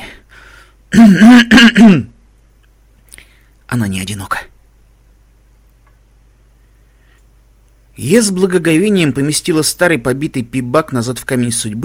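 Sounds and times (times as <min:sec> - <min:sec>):
person clearing throat: 0:00.9 - 0:02.2
speech: 0:01.0 - 0:02.1, 0:03.7 - 0:04.5, 0:08.0 - 0:11.8.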